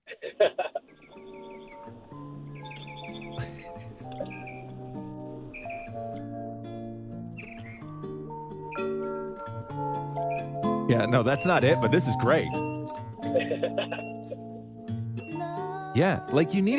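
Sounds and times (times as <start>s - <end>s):
laughter: 0.1s - 0.9s, 3.3s - 4.6s, 13.2s - 14.7s
bright bird chirps and high twittering calls: 0.9s - 6.3s, 7.2s - 14.6s
warm sustained music: 0.9s - 16.7s
speech: 10.9s - 12.7s, 16.0s - 16.7s.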